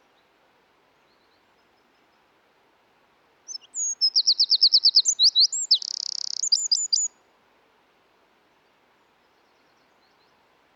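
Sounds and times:
Eurasian wren Troglodytes troglodytes song: 0:03.5 - 0:07.2.

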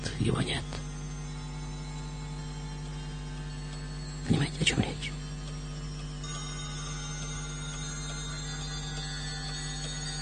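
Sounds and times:
clock ticking in a studio: 0:00.0 - 0:10.2
speech: 0:00.2 - 0:00.8.

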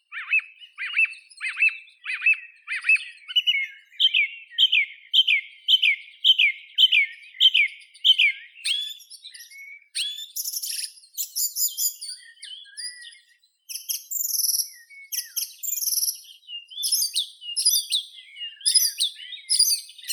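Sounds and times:
song thrush Turdus philomelos singing: 0:00.0 - 0:20.1.

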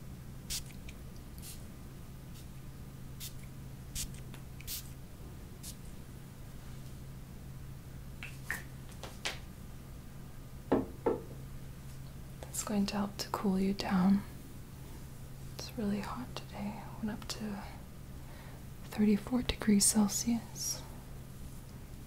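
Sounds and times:
spray bottle misting into the air: 0:00.5 - 0:01.7, 0:03.2 - 0:05.0, 0:05.6 - 0:05.8
speech: 0:12.7 - 0:14.3, 0:15.8 - 0:17.8, 0:19.0 - 0:20.8.

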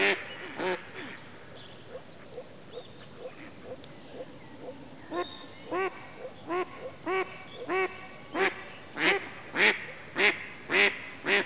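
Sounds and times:
Mallard duck quacking: 0:05.7 - 0:11.4.

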